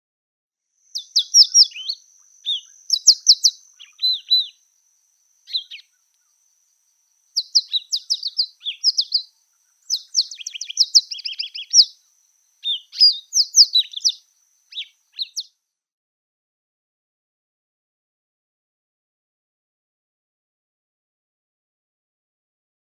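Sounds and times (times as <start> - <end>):
African pied wagtail singing: 0.9 - 4.6, 5.5 - 5.9, 7.4 - 12.0, 12.6 - 15.5.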